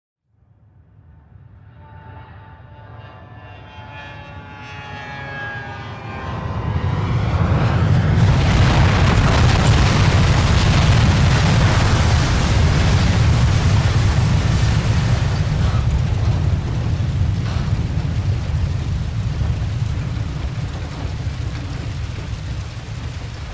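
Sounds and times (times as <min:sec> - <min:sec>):
passenger plane crash: 0:07.2 - 0:23.5.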